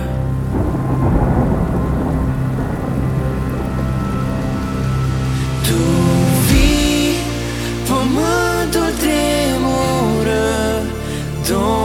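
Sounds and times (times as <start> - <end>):
deep rolling thunder rumbling: 0.0 - 8.5
heavy rain: 0.0 - 11.8.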